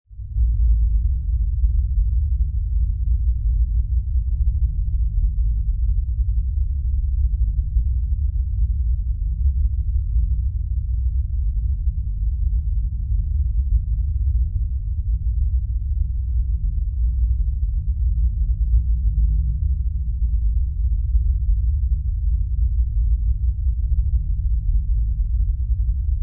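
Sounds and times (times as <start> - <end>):
deep industrial rumble in a factory: 0.1 - 26.2.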